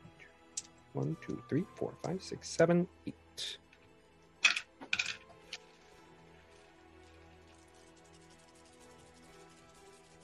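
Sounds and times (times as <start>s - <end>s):
speech: 1.0s - 3.6s
large handful of dice rolled during a tabletop game: 4.4s - 5.8s.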